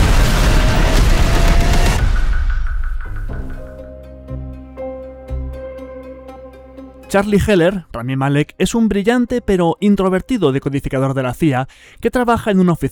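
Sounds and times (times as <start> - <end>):
loud roaring explosion: 0.0 - 3.0
deep booming musical notes: 0.0 - 7.6
speech: 7.1 - 12.9.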